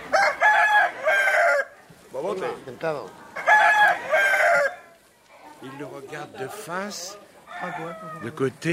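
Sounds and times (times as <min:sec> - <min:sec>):
fighting roosters crowing: 0:00.0 - 0:01.9, 0:03.2 - 0:05.7, 0:06.4 - 0:08.6
quieter voices or clucking: 0:00.0 - 0:08.7
speech: 0:02.4 - 0:03.2, 0:05.6 - 0:08.7.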